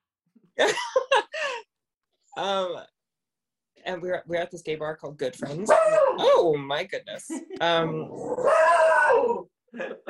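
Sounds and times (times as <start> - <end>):
speech: 0.6 - 1.1, 2.4 - 2.9, 3.9 - 10.0
dog yelping: 5.7 - 6.3, 8.3 - 9.4
dog growling: 7.8 - 9.5.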